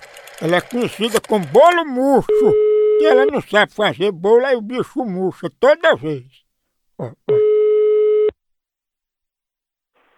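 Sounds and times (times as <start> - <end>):
speech: 0.4 - 6.4, 7.0 - 7.5
telephone ringback tone on an outgoing mobile phone call: 2.3 - 3.4, 7.4 - 8.3.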